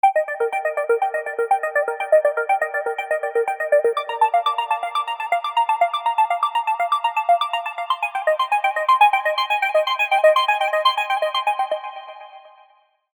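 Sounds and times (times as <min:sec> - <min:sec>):
Serum synth arpeggios: 0:00.0 - 0:12.3.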